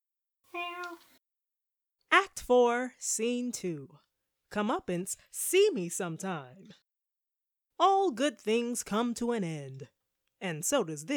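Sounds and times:
cat meowing: 0:00.5 - 0:01.1
speech: 0:02.4 - 0:06.8, 0:07.8 - 0:11.1.

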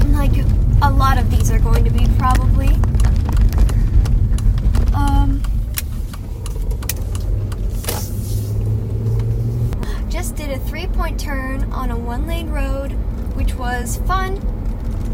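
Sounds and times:
moving car engine rumble: 0:00.0 - 0:15.1
road noise in a moving car's cabin: 0:00.0 - 0:15.1
clicks and rattles in a car cabin: 0:00.4 - 0:07.7
speech: 0:01.1 - 0:03.3, 0:11.2 - 0:14.6.

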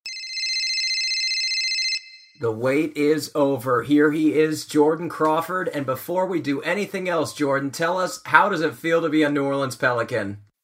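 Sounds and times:
electronic telephone ring effect: 0:00.1 - 0:02.4
speech: 0:02.4 - 0:10.4.

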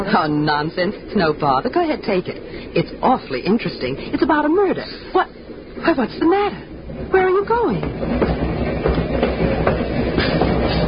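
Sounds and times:
moving train rumble: 0:00.0 - 0:10.8
speech: 0:00.1 - 0:08.3
train wheels clacking over rail joints: 0:06.8 - 0:10.8.

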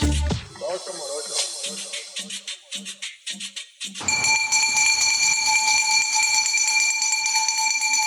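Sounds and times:
garbage truck hand bell ringing: 0:04.1 - 0:08.0.

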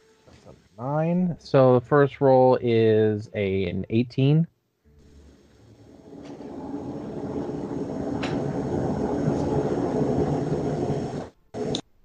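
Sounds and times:
speech: 0:00.8 - 0:04.5
train going by a house: 0:05.1 - 0:11.7.

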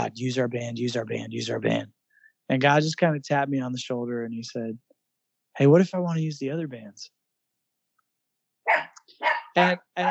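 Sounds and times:
speech: 0:00.0 - 0:04.9, 0:05.6 - 0:07.2, 0:08.7 - 0:10.1
dog barking: 0:08.7 - 0:10.1.

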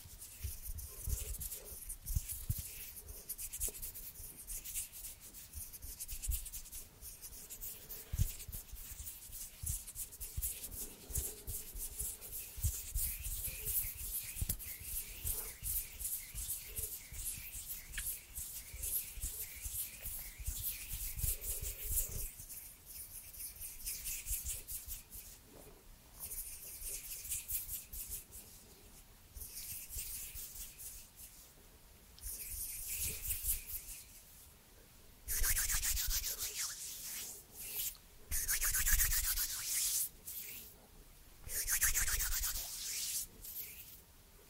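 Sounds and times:
hands rubbing and brushing against each other: 0:00.0 - 0:25.5, 0:26.2 - 0:28.6, 0:29.4 - 0:31.5, 0:32.2 - 0:34.4, 0:35.3 - 0:40.8, 0:41.4 - 0:44.0.

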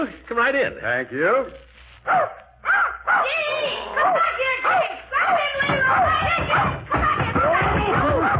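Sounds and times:
speech: 0:00.0 - 0:02.4
puppy yipping and barking: 0:02.1 - 0:06.8, 0:08.0 - 0:08.3.

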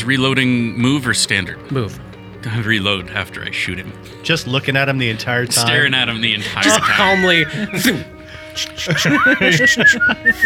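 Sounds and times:
laughter: 0:00.0 - 0:10.4
speech: 0:00.0 - 0:10.4
person whistling a short gliding tune: 0:06.6 - 0:10.4.

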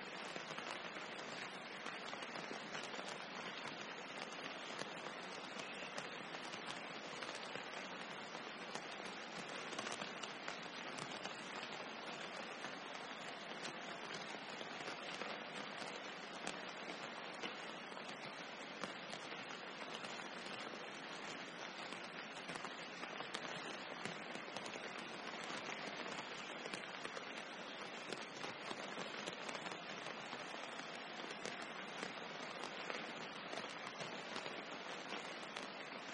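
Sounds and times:
dense rain pouring on a tropical rainforest campsite: 0:00.0 - 0:36.1.

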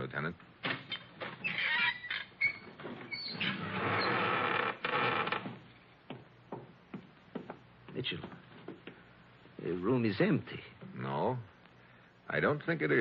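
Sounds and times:
speech: 0:00.1 - 0:00.5, 0:09.8 - 0:11.5, 0:12.3 - 0:12.9
heavy secret door creaking open: 0:00.6 - 0:05.6.

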